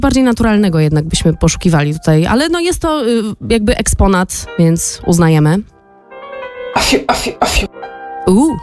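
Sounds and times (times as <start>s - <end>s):
speech: 0.0s - 5.7s, 6.8s - 8.6s
performed theatrical cough: 6.8s - 7.7s.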